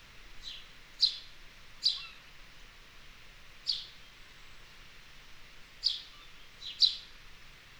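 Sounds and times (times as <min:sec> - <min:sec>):
steady low hiss: 0:00.0 - 0:07.7
house sparrow chirping: 0:00.4 - 0:02.2, 0:05.8 - 0:07.0.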